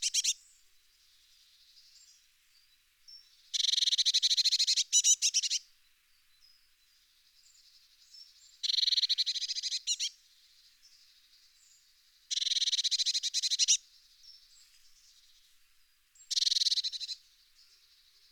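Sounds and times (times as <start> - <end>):
Eurasian blue tit churring: 0.0 - 0.4, 3.5 - 5.6, 8.6 - 10.1, 12.3 - 13.8, 16.3 - 17.2.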